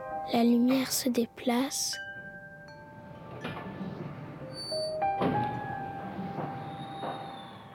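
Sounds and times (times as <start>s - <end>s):
speech: 0.3s - 2.0s
door creaking: 3.1s - 7.7s.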